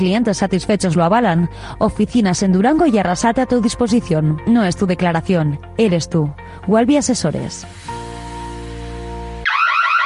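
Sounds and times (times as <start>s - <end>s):
speech: 0.0s - 8.0s
electronic security alarm buzzing and wailing: 9.4s - 10.0s.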